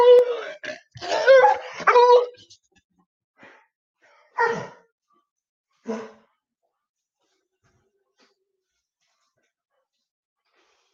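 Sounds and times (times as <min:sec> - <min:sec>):
dog whining and yelping: 0:00.0 - 0:02.4.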